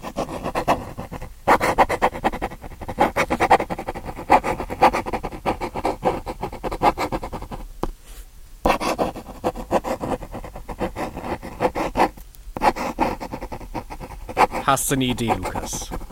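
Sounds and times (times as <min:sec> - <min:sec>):
pen scratching across paper: 0:00.0 - 0:07.7, 0:08.7 - 0:16.0
speech: 0:14.7 - 0:15.8.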